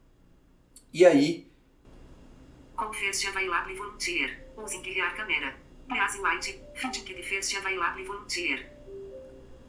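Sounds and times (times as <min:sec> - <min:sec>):
speech: 0:00.9 - 0:01.5, 0:02.8 - 0:08.8
bright electronic app tone looping melody while searching for volunteers: 0:06.6 - 0:07.3, 0:08.6 - 0:09.6.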